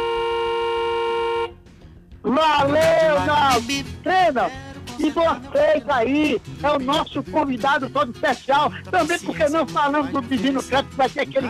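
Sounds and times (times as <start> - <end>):
horn blaring in a long steady buzzing tone: 0.0 - 1.7
speech: 2.2 - 3.0, 3.6 - 11.4.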